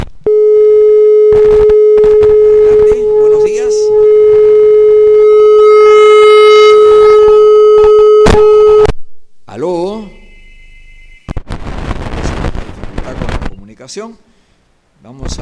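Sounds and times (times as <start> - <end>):
crackling telephone line noise: 0.0 - 9.5, 10.2 - 13.8
telephone line tone of an incoming call: 0.3 - 8.9
warbling voice-like sounds on a phone line: 5.4 - 7.3.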